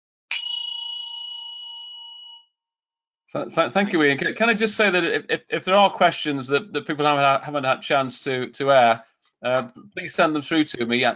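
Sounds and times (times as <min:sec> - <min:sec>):
zen meditation bell being struck: 0:00.3 - 0:02.6
speech: 0:03.3 - 0:11.1.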